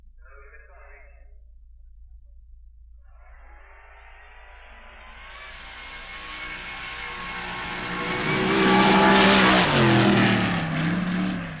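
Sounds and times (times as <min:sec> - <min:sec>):
drag racing car making a test run at the top end of the strip: 0:03.2 - 0:11.5.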